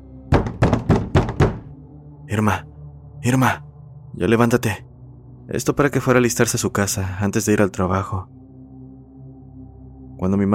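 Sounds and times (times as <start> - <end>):
firm knocking on a wooden door: 0.3 - 1.7
speech: 2.3 - 4.9, 5.5 - 8.4, 10.2 - 10.5.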